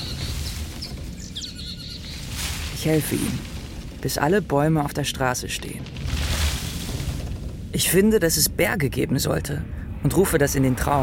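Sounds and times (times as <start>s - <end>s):
agitated birds chirping and calling: 0.0s - 4.0s
steady low rumble: 0.0s - 11.0s
speech: 2.8s - 6.0s, 7.8s - 11.0s.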